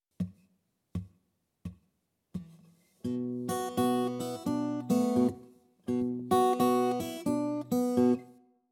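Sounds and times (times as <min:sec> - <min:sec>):
blues guitar in open tuning playing: 0:03.1 - 0:08.3.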